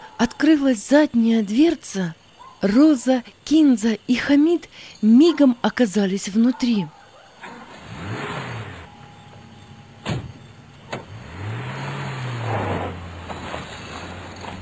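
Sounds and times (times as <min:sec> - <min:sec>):
speech: 0:00.2 - 0:07.0
car engine roaring and revving as the car speeds off: 0:07.6 - 0:14.6
sharp thuds: 0:10.0 - 0:11.2.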